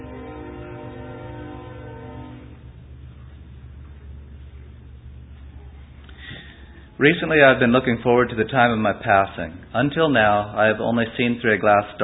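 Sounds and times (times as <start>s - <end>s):
train horn: 0.0s - 2.7s
heavy rumble of rolling train wheels: 0.0s - 12.0s
speech: 7.0s - 12.0s.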